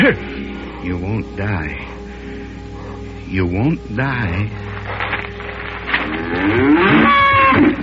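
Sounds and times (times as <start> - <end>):
speech: 0.0 - 2.0, 3.3 - 4.7, 6.3 - 7.8
low steady hum: 0.0 - 7.8
calf mooing: 6.2 - 7.8.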